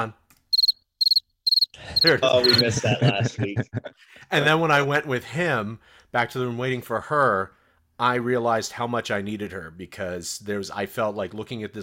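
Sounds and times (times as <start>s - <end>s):
speech: 0.0s - 0.2s, 2.0s - 11.8s
crickets chirping: 0.5s - 2.6s
laughter: 1.8s - 4.1s.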